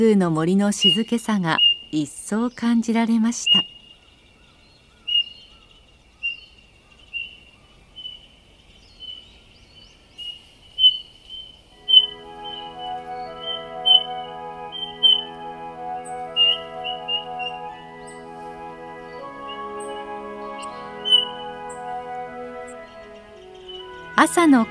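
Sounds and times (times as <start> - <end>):
speech: 0.0 - 3.8, 24.2 - 24.6
Eurasian bullfinches calling in a forest: 0.0 - 24.6
gentle sustained music: 11.8 - 24.6.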